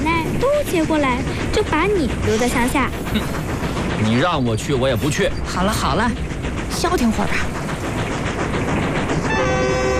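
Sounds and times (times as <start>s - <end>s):
train travelling toward a provincial city with rumbling roar: 0.0s - 9.9s
speech: 0.6s - 3.4s, 4.0s - 7.6s
sustained tonal horn-like sound: 9.3s - 9.9s.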